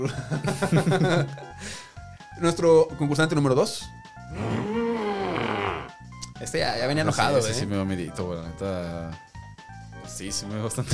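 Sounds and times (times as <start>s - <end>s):
laughter: 0.0s - 1.6s
speech: 0.0s - 1.7s, 2.4s - 4.6s, 6.4s - 9.3s, 10.1s - 10.9s
human voice imitating a tortured alien groan: 4.3s - 6.0s.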